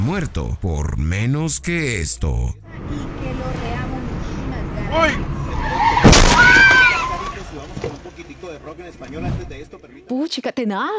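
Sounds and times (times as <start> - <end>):
speech: 0.1 - 3.6, 4.9 - 5.3, 7.6 - 10.9
high squeal: 5.5 - 7.4
car crash impact: 5.5 - 9.6.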